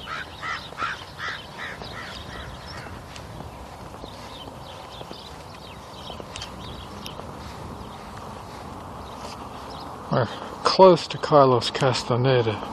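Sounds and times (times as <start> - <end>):
crows cawing: 0.0 - 3.2
steady outdoor hiss of wind or traffic: 1.4 - 12.7
speech: 10.2 - 12.7.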